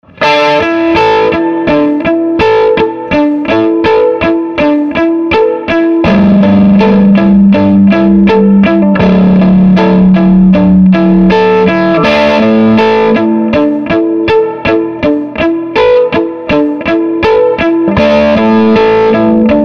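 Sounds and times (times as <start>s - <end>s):
SG guitar bridge pickup crunch through Swart AST Pro: 0.0s - 19.6s.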